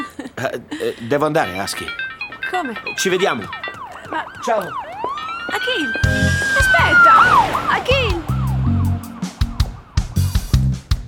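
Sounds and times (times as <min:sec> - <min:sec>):
speech: 0:00.4 - 0:04.8, 0:05.5 - 0:06.2
siren wailing: 0:03.0 - 0:10.4.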